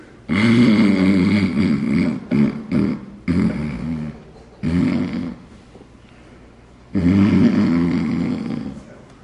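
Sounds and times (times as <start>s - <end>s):
man snoring: 0.3s - 5.4s, 6.9s - 8.9s.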